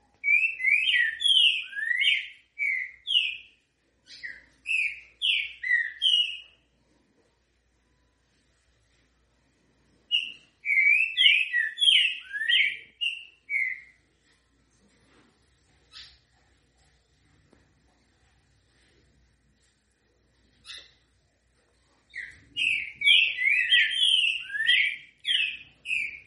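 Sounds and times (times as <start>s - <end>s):
Green-winged Saltator song: 0.2s - 6.6s, 10.1s - 14.0s, 22.1s - 26.2s.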